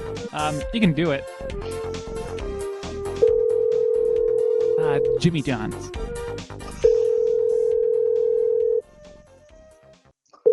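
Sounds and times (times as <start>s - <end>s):
speech: 0.3s - 2.4s, 4.9s - 6.2s
telephone dial tone before a call is placed: 3.2s - 5.2s, 6.8s - 8.8s.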